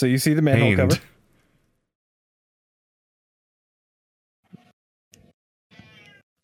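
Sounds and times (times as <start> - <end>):
speech: 0.0 - 1.1
cat meowing in a video game: 5.7 - 6.2.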